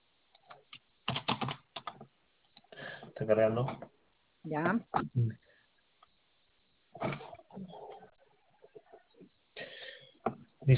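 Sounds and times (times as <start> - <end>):
keys clattering on a computer keyboard as a customer code is typed: 0.4 - 2.1
speech: 3.2 - 5.4.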